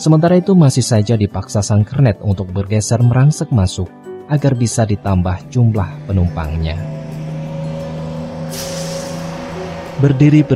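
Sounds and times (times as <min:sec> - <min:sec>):
speech: 0:00.0 - 0:07.0, 0:10.0 - 0:10.5
crowded bus engine hum while driving: 0:04.5 - 0:10.5
hiss: 0:08.5 - 0:09.4.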